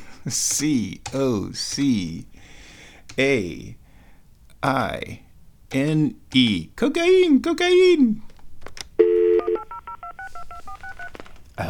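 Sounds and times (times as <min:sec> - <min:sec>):
speech: 0:00.2 - 0:02.6, 0:03.2 - 0:03.8, 0:04.6 - 0:08.3
telephone keypad two-tone beeps dialing a 1-800 number: 0:09.0 - 0:11.1.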